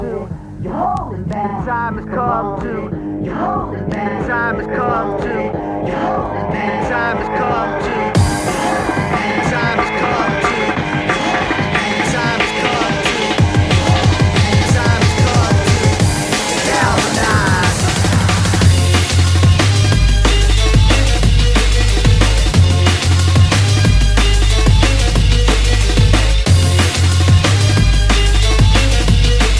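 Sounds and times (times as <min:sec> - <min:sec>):
music: 0:00.0 - 0:29.5.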